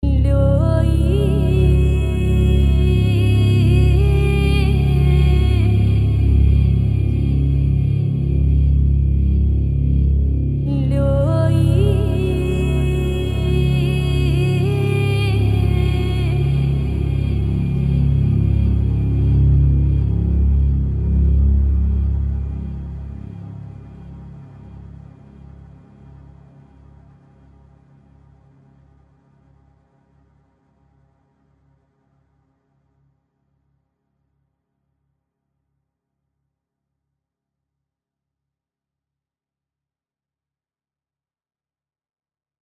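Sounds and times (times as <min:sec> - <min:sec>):
atmospheric vocal pad in C sharp: 0:00.0 - 0:25.5.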